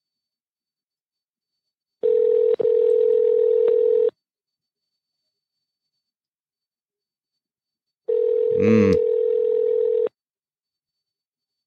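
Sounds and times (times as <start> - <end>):
US telephone ringback tone on an automated line: 2.0 - 4.2, 8.1 - 10.2.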